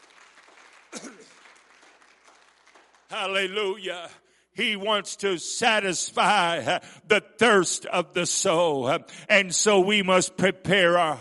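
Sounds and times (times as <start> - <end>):
audience clapping hands: 0.0 - 4.2
speech: 3.1 - 11.1.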